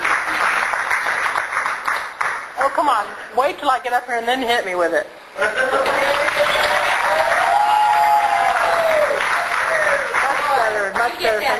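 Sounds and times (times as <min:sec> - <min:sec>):
large audience applause: 0:00.0 - 0:02.6, 0:05.7 - 0:11.3
speech: 0:02.7 - 0:05.9
people whooping and cheering: 0:05.8 - 0:10.2.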